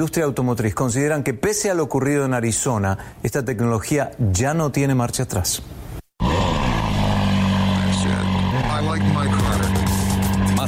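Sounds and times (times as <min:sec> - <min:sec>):
speech: 0:00.0 - 0:05.9
car engines roaring at the 2018 Atlanta International Auto Show: 0:06.2 - 0:10.6.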